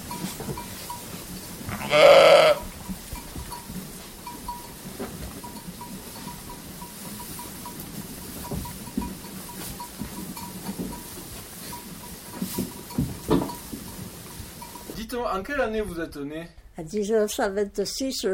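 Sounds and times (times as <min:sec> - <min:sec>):
soft steady tinkle in a farmyard: 0:00.0 - 0:01.7, 0:02.7 - 0:15.0
faint scattered farmyard animal sounds: 0:01.7 - 0:02.7
flock of ewes bleating at Cirque de l'Abeille: 0:01.7 - 0:02.7
speech: 0:01.9 - 0:02.2, 0:15.2 - 0:18.3.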